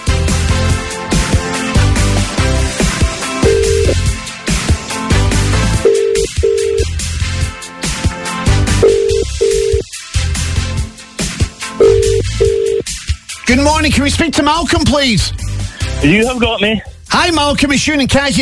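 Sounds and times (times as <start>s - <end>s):
continuous music bed: 0.0s - 18.4s
telephone ringback tone: 3.4s - 4.0s, 5.8s - 6.9s, 8.8s - 9.8s, 11.8s - 12.8s
speech: 13.5s - 15.4s, 16.0s - 18.4s.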